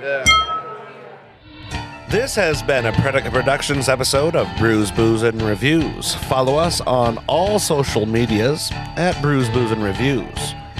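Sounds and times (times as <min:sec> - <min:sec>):
glasses clinking in a toast: 0:00.3 - 0:01.0
speech: 0:02.1 - 0:10.6.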